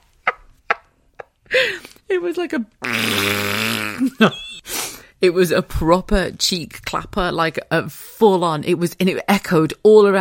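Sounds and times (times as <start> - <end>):
speech: 1.5 - 10.2
short vocal bursts: 2.8 - 4.1
voice imitating a loud drawn-out fart: 2.8 - 4.2.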